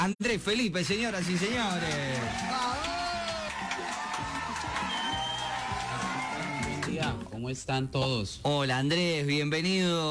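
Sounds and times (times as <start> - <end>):
speech: 0.0 - 3.0, 7.0 - 10.1
crowd applauding to welcome a guest: 1.1 - 7.2
crowd cheers and high whoops: 1.8 - 7.0.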